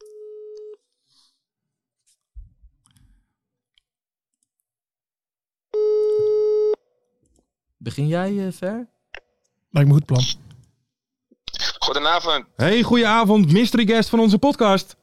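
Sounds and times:
telephone tone while calling someone: 0:00.0 - 0:00.7, 0:05.8 - 0:06.8
speech: 0:07.8 - 0:09.0, 0:09.7 - 0:10.5, 0:11.9 - 0:15.0.

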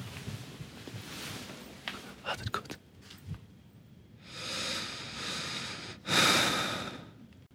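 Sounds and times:
man breathing heavily in sleep: 0:04.2 - 0:07.2.

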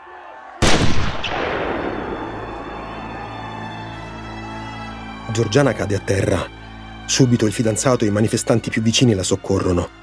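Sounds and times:
gunshot: 0:00.6 - 0:02.7
rumbling echo of a gunshot: 0:00.6 - 0:04.6
speech: 0:05.3 - 0:10.0.

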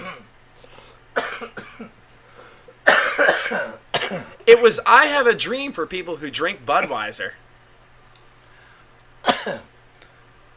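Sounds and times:
person coughing harshly: 0:00.0 - 0:00.3, 0:01.1 - 0:02.0, 0:02.8 - 0:04.4, 0:09.2 - 0:09.7
speech: 0:04.5 - 0:07.4.

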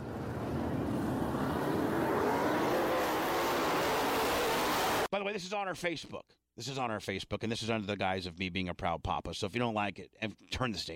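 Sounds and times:
many race car engines roaring as the field accelerates on a race restart: 0:00.0 - 0:05.1
speech: 0:05.1 - 0:10.9.

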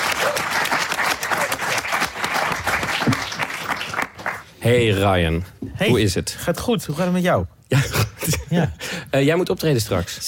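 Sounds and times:
audience of many hands clapping: 0:00.0 - 0:04.6
speech: 0:04.6 - 0:10.2.

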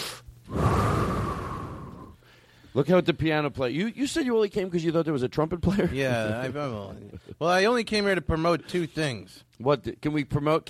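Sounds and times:
deep breath: 0:00.5 - 0:02.8
speech: 0:02.8 - 0:10.6.

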